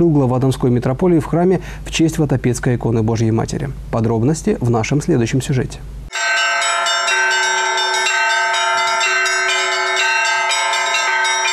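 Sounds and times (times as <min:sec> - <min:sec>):
speech: 0:00.0 - 0:06.0
festive peal of church bells: 0:06.1 - 0:11.5.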